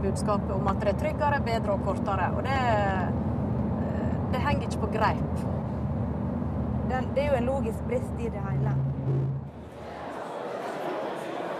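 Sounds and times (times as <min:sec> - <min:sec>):
speech: 0:00.0 - 0:03.3, 0:04.3 - 0:05.7, 0:06.9 - 0:09.3
low hum: 0:00.0 - 0:09.9
murmur of conference crowd chattering indoors: 0:09.5 - 0:11.5.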